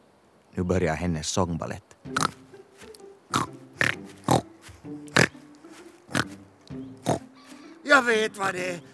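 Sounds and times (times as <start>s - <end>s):
speech: 0.6s - 2.4s, 8.0s - 8.9s
farm pig grunting and squealing: 2.1s - 2.4s, 3.3s - 4.5s, 6.1s - 6.4s, 7.0s - 7.4s.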